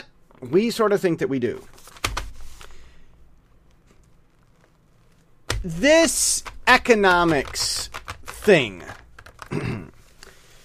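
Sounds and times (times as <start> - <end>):
speech: 0.4 - 1.8, 5.6 - 9.0
paper rustling: 1.6 - 2.8, 3.8 - 10.2.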